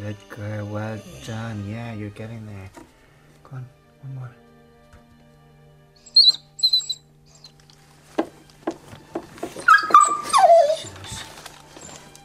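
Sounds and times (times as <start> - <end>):
speech: 0.0 - 2.9, 3.5 - 4.4
mother dog whining during whelping: 6.0 - 7.6, 9.4 - 12.2
newborn puppy squeaking during whelping: 6.0 - 7.6, 9.6 - 12.2
rustling and handling noises as the birth sac is taken off the puppy: 7.5 - 12.2.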